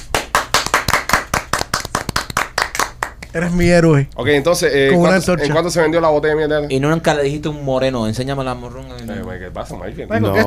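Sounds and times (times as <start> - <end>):
people clapping: 0.0 - 3.4
speech: 3.3 - 10.4.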